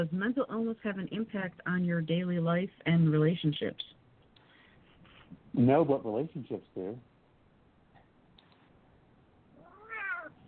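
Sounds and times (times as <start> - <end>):
speech: 0.0 - 4.0, 5.6 - 7.1
cat meowing: 9.6 - 10.4.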